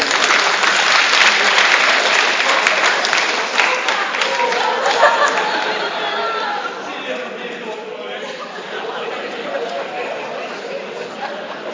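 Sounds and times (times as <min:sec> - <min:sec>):
audience applause: 0:00.0 - 0:06.0
audience cheering: 0:00.0 - 0:06.8
laughter: 0:01.3 - 0:11.7.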